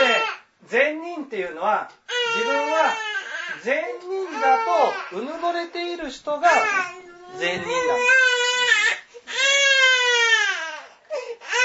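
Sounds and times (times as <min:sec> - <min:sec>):
infant crying in loud drawn-out wails: 0:00.0 - 0:00.4, 0:02.1 - 0:05.3, 0:06.5 - 0:11.6
speech: 0:00.7 - 0:08.7.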